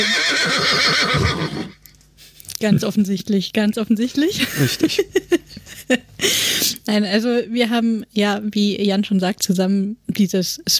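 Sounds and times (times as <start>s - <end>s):
horse neighing: 0.0s - 1.9s
speech: 2.6s - 10.7s.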